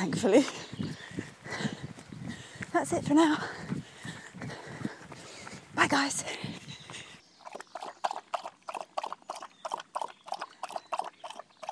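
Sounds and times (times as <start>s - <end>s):
speech: 0.0s - 0.9s, 2.8s - 3.7s, 5.8s - 6.6s
pet animal drinking by lapping: 7.3s - 11.7s.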